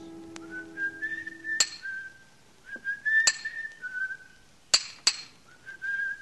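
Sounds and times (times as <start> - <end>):
person whistling a cheerful tune in a monumental mason's yard: 0.4 - 4.3, 5.5 - 6.2.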